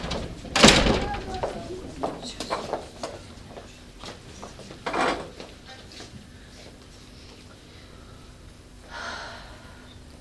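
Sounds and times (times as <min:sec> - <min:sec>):
sharp door clunk: 0:00.0 - 0:01.7
actors shuffling out of two doors: 0:00.0 - 0:07.8
faint voices: 0:00.6 - 0:04.0
breathy hiss: 0:06.3 - 0:10.1.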